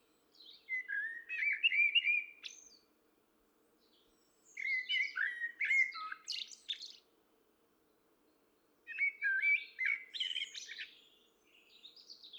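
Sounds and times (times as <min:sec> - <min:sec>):
common blackbird Turdus merula singing mellow fluting warbled phrases: 0:00.4 - 0:02.8, 0:04.5 - 0:07.0, 0:08.9 - 0:12.3.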